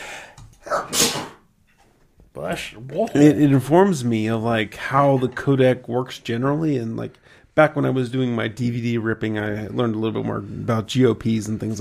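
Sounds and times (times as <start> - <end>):
sneeze: 0.6 - 1.5
speech: 0.9 - 1.4, 2.5 - 11.7.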